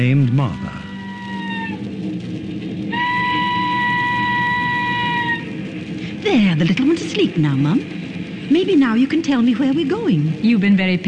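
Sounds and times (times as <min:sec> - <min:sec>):
speech: 0:00.0 - 0:00.9, 0:06.2 - 0:11.0
train sounding a harmonic whistle: 0:00.0 - 0:01.9, 0:02.9 - 0:05.8
train rumbling roar: 0:00.0 - 0:11.0.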